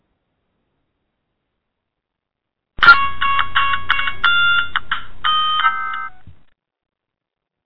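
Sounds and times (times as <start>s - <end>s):
incoming phone call electronic ringtone on a radio call-in show: 2.8s - 6.2s.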